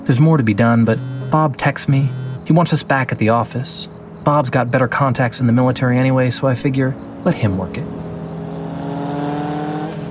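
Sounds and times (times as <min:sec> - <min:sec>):
car engine droning: 0:00.0 - 0:03.2, 0:07.9 - 0:10.0
speech: 0:00.0 - 0:08.1.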